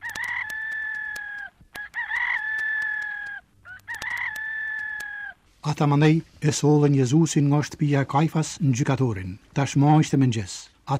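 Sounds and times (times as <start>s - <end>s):
rooster crowing: 0.0s - 5.4s
speech: 5.6s - 10.9s.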